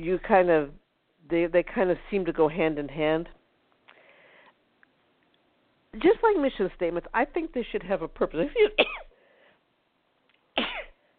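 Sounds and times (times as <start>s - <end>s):
speech: 0.0s - 3.4s, 6.0s - 9.0s
faint breath: 3.9s - 4.6s, 9.1s - 9.7s
person sneezing: 10.6s - 11.0s.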